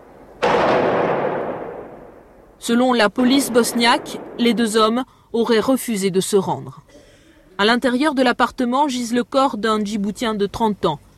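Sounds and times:
gunshot in an exchange of gunfire between police and armed men: 0.1s - 2.3s, 3.2s - 4.6s
speech: 2.6s - 7.0s, 7.6s - 11.1s.

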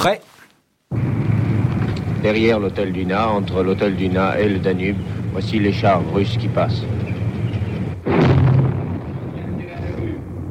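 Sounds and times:
speech: 0.0s - 0.4s, 2.2s - 7.1s
rough noisy background: 1.3s - 8.0s
machine-gun fire striking a wall in street fighting: 8.0s - 10.1s.

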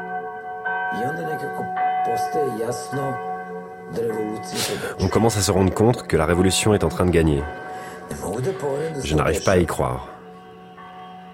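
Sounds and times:
church bells ringing: 0.0s - 11.3s
speech: 1.0s - 3.3s, 3.9s - 10.2s.

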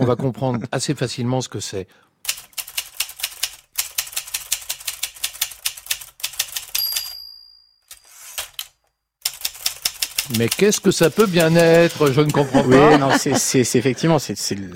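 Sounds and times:
speech: 0.0s - 2.2s, 10.3s - 14.7s
Olivetti typewriter keys clacking: 2.3s - 7.2s, 7.9s - 12.4s
typewriter bell ding: 6.7s - 8.2s
laughter: 11.2s - 14.4s.

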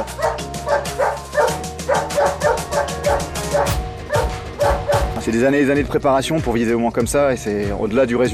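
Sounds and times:
sled dog barking: 0.0s - 5.1s
speech: 5.3s - 8.3s.

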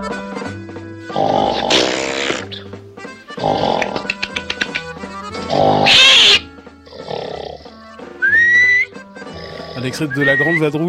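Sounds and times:
loud rasping snores: 1.1s - 2.5s, 3.4s - 4.1s, 5.4s - 7.8s, 9.2s - 10.0s
sharp whistles: 8.2s - 9.0s, 10.1s - 10.7s
speech: 9.9s - 10.8s.

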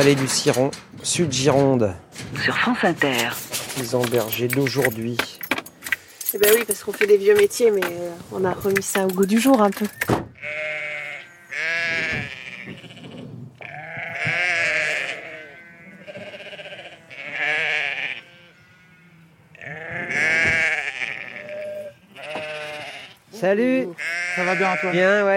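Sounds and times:
speech: 0.0s - 5.4s, 6.3s - 10.6s, 23.4s - 25.3s
flock of ewes and newborn lambs bleating in the Ciron valley of South Gironde: 10.3s - 25.3s.

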